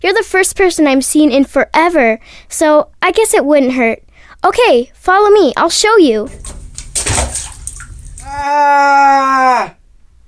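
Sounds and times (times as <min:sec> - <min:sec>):
speech: 0:00.0 - 0:06.6, 0:08.3 - 0:09.8
water splashing: 0:06.3 - 0:08.4
person crying out: 0:08.2 - 0:09.8.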